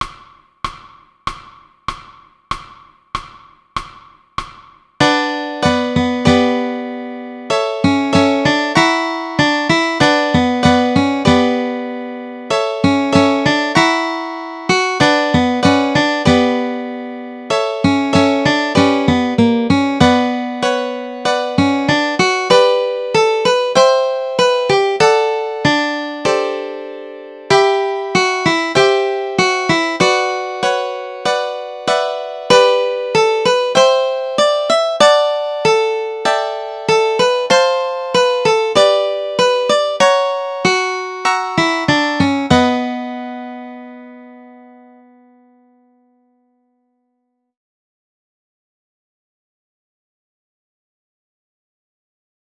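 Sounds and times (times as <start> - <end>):
guitar melody chords: 5.0 - 46.4.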